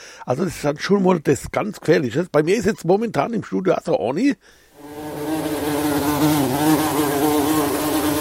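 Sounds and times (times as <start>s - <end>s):
speech: 0.2s - 4.6s
mosquito buzzing in a studio: 4.8s - 8.1s.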